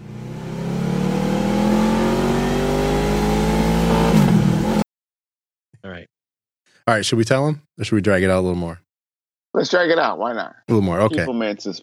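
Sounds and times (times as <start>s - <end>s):
Honda Gold Wing motorcycle engine accelerating: 0.0s - 4.8s
speech: 6.9s - 8.8s, 9.5s - 11.8s.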